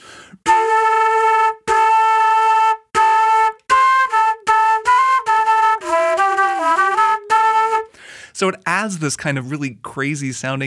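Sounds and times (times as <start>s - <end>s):
flute played while humming into it, producing two tones: 0.4s - 7.9s
speech: 8.4s - 10.6s.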